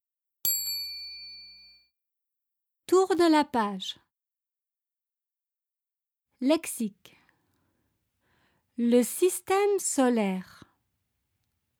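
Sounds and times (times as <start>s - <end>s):
small bell chime as page-turn cue in a read-along picture book: 0.4s - 2.0s
speech: 2.9s - 4.0s, 6.4s - 7.2s, 8.8s - 10.6s.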